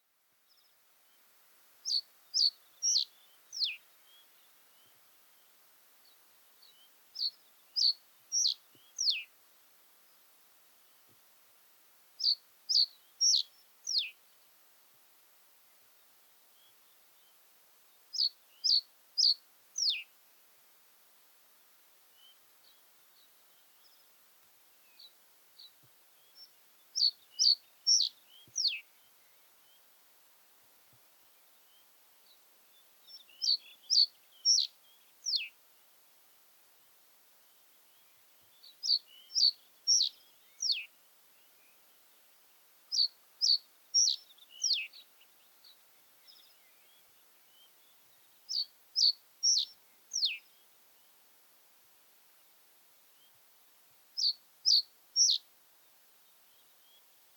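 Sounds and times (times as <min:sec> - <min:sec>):
common reed bunting Emberiza schoeniclus singing: 0:01.8 - 0:05.0, 0:06.7 - 0:09.3, 0:12.2 - 0:14.2, 0:18.1 - 0:20.1, 0:25.0 - 0:29.0, 0:33.1 - 0:35.5, 0:38.8 - 0:40.9, 0:42.9 - 0:45.0, 0:48.5 - 0:50.5, 0:54.2 - 0:55.5.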